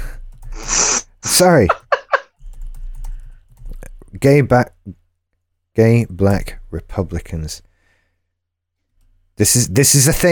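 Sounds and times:
speech: 1.4 - 1.8, 4.2 - 5.0, 5.8 - 7.7, 9.4 - 10.3
laughter: 1.4 - 2.3
typing on a computer keyboard: 1.7 - 3.9.

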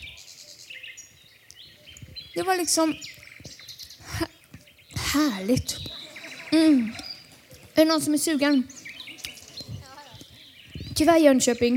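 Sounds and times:
birds chirping and twittering: 0.0 - 11.7
speech: 2.4 - 3.2, 5.2 - 5.9, 6.5 - 7.0, 7.8 - 8.8, 11.0 - 11.7.

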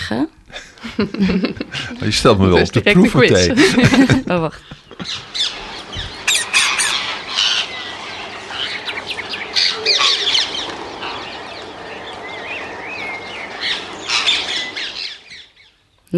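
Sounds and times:
speech: 0.1 - 5.3
laughter: 0.5 - 15.1
other birds chirping and calling outdoors: 1.2 - 15.8
rose-ringed parakeets squawking: 5.0 - 15.4.

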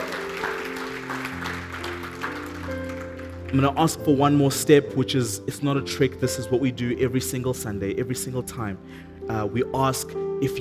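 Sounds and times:
audience applauding: 0.0 - 4.0
speech: 3.5 - 10.5.

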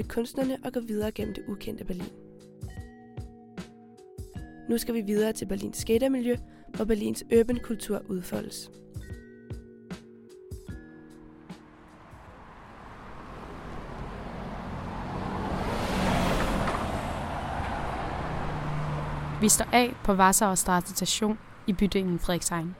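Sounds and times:
speech: 0.0 - 2.2, 4.7 - 9.2, 19.4 - 22.7
traffic on a busy road near a station in Berlin: 11.0 - 22.7.

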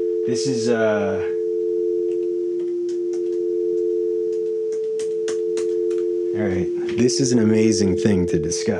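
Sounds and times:
speech: 0.2 - 1.4, 6.4 - 8.7
telephone dial tone of two combined tones: 1.4 - 7.0
faint clicks and crackles: 2.1 - 6.1.

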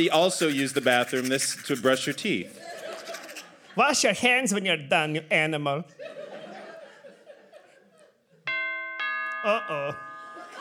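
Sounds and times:
speech: 0.0 - 2.8, 3.8 - 6.2, 9.4 - 10.0
chuckling and laughter: 2.3 - 4.0, 5.9 - 8.4, 9.5 - 10.5
loud electronic doorbell chime: 8.5 - 10.5.

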